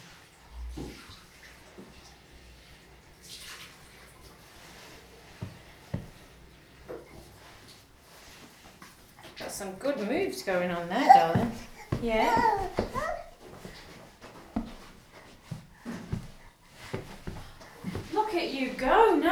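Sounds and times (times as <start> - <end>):
water running into a bathtub: 0.0 - 19.2
soft knocks and clunks: 5.4 - 6.3, 11.1 - 19.0
speech: 9.6 - 12.8.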